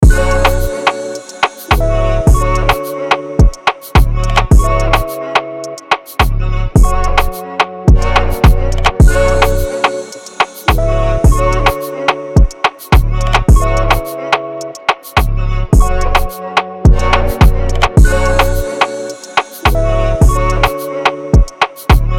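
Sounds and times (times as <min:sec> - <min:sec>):
music at 107 BPM in B minor: 0:00.0 - 0:22.1.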